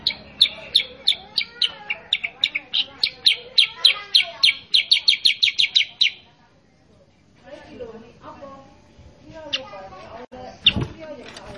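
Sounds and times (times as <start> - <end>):
sooty-headed bulbul song: 0.0 - 6.3.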